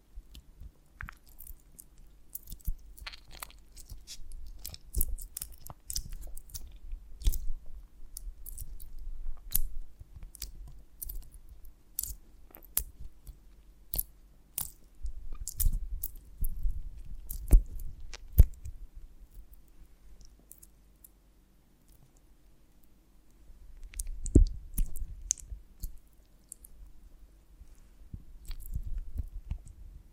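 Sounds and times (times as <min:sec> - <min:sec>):
clicks and crunches from handling a honeycomb on a branch: 0:00.3 - 0:18.7, 0:23.7 - 0:26.8, 0:28.4 - 0:29.8.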